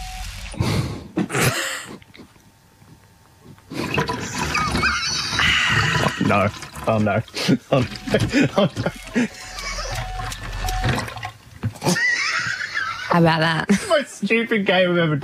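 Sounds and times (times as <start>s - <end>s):
milk being poured into a jug: 3.8s - 11.4s
speech: 6.3s - 9.6s, 13.2s - 15.2s
laughter: 7.4s - 10.2s, 11.8s - 14.0s.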